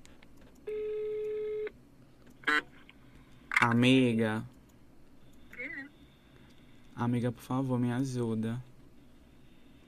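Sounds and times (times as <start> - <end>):
buzzy phone ringing tone on the line: 0.7 - 1.7
speech: 3.7 - 4.5, 7.0 - 8.7.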